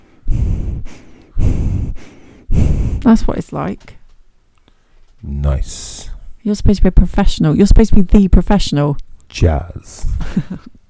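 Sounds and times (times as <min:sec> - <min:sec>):
heavy breathing into a new microphone: 0:00.0 - 0:03.2
speech: 0:03.1 - 0:04.0, 0:05.2 - 0:10.7.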